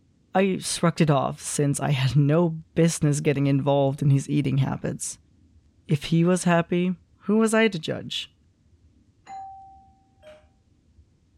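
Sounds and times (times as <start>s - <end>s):
low hum: 0.0s - 11.3s
speech: 0.4s - 5.2s, 5.9s - 8.3s
two-tone doorbell chiming indoors: 9.3s - 10.6s.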